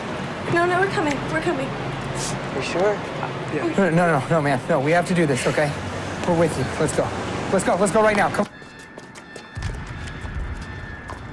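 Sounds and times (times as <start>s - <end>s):
speech: 0.5s - 8.6s
hooves of a white horse pulling an empty carriage along a street road: 6.1s - 11.3s.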